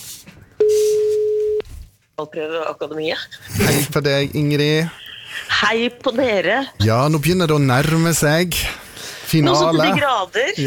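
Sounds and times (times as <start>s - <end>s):
telephone ringing tone before call answered: 0.6s - 1.6s
speech: 2.2s - 5.0s, 5.6s - 8.7s, 9.3s - 10.6s.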